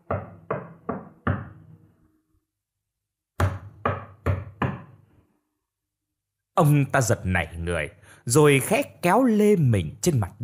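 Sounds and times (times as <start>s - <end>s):
sharp wooden raps knocking at night: 0.0s - 1.6s, 3.4s - 4.9s
speech: 6.6s - 10.4s.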